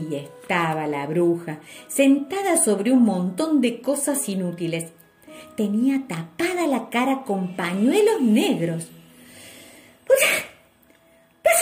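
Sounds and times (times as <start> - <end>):
speech: 0.0 - 9.0
storyteller sneezing: 10.1 - 10.6.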